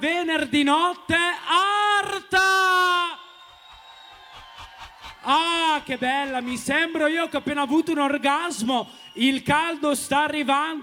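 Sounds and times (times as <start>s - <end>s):
speech: 0.0s - 2.5s, 5.2s - 10.8s
audience screaming: 3.2s - 9.6s.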